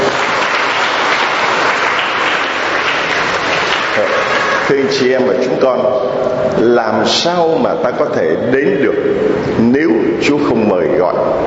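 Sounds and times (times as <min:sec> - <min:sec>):
large church audience applause: 0:00.0 - 0:05.2
speech: 0:04.7 - 0:11.4.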